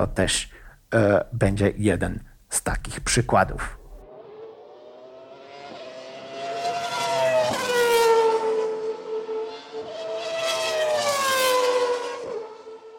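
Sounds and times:
speech: 0:00.0 - 0:03.8
high-revving V10 racing engine screaming past: 0:03.9 - 0:12.9.

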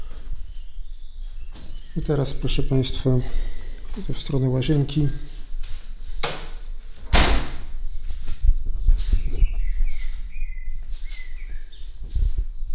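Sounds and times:
birds chirping and whistling outdoors heard through a tilted-open window: 0:00.0 - 0:03.8, 0:09.1 - 0:12.7
speech: 0:02.0 - 0:05.3
window being handled thumping and rattling: 0:06.2 - 0:07.8.

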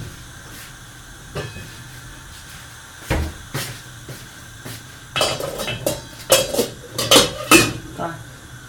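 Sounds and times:
steady hiss: 0:00.0 - 0:08.6
metal lid set onto a cooking pot: 0:05.2 - 0:07.8.

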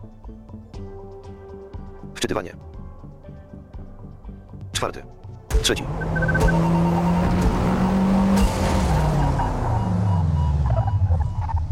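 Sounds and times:
speech: 0:02.2 - 0:02.7, 0:04.8 - 0:07.6
video game race car engine whining while braking: 0:05.5 - 0:11.7
video game race car tires squealing: 0:05.9 - 0:11.7.

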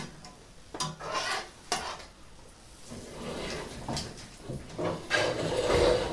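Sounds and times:
utensil scraping and clinking against the pan: 0:00.8 - 0:02.2, 0:02.8 - 0:06.1.

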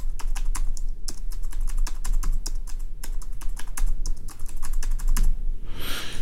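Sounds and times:
typing on a Braille Sense braille notetaker keyboard: 0:00.0 - 0:05.3.

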